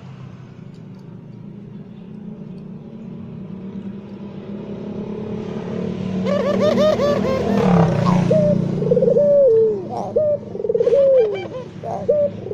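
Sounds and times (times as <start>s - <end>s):
white Barbary dove cooing: 6.2s - 12.5s.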